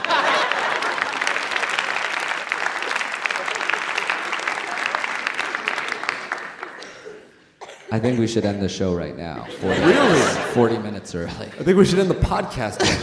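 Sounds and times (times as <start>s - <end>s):
laughter: 0.0s - 1.8s, 9.4s - 13.0s
live audience applauding: 0.0s - 7.4s
speech: 8.0s - 13.0s.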